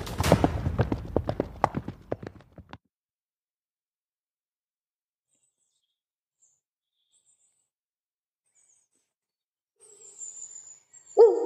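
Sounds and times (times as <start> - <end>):
horses' hooves clip-clopping: 0.0 - 2.8.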